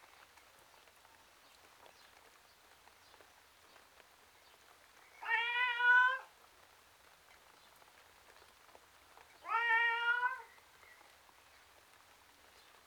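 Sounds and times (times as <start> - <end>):
tom cat meowing outside: 5.2 - 6.3, 9.5 - 10.4.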